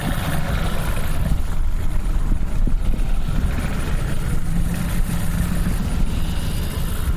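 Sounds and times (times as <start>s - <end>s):
boat motor idling as the boat pulls up at a boat landing in Grand Bayou: 0.0s - 7.1s.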